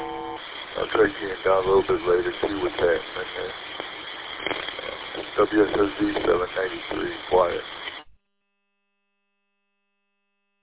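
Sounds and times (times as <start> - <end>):
burst of radio static crackle: 0.0 - 8.2
radio dead key unmodulated carrier buzzing tone: 0.0 - 8.2
speech: 0.8 - 3.8, 5.4 - 7.8.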